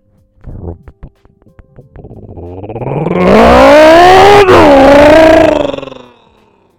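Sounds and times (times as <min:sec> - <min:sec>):
man vocally imitating loud revving engine of little truck with no exhaust: 0:02.0 - 0:06.5.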